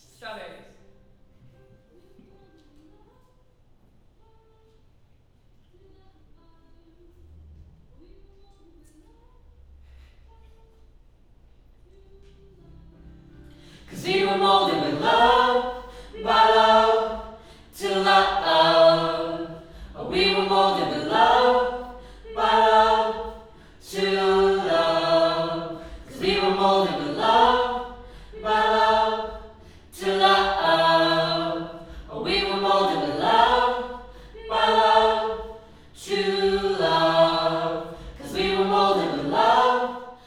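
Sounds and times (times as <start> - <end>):
choir singing: 13.5 - 40.2.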